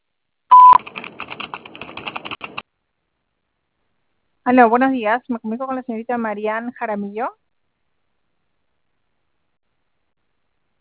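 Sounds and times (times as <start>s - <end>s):
answering machine beep: 0.5s - 0.8s
speech: 4.5s - 7.4s.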